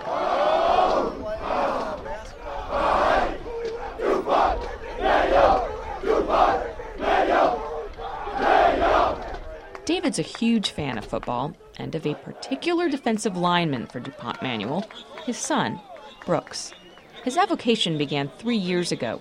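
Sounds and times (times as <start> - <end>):
football team chanting during warmups: 0.0 - 10.1, 11.0 - 16.2
outdoor crowd noise: 0.0 - 19.1
football team clapping during warmups: 3.5 - 18.8
speech: 10.2 - 19.1.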